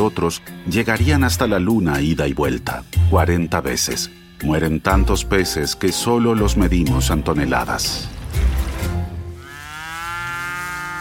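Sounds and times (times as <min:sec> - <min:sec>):
speech: 0:00.0 - 0:08.4
dairy cow mooing at milking time in the Lower Oder Valley national park: 0:09.3 - 0:11.0.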